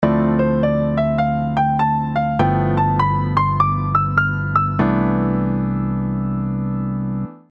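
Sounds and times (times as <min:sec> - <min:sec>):
two five one mixolydian chord progression: 0:00.0 - 0:07.4.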